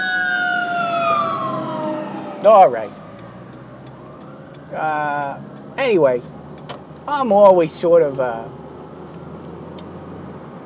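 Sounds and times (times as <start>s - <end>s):
fire truck siren wailing as the vehicle passes: 0.0s - 5.7s
low road rumble: 0.0s - 10.6s
speech: 2.4s - 3.0s, 4.7s - 6.4s, 7.1s - 8.6s.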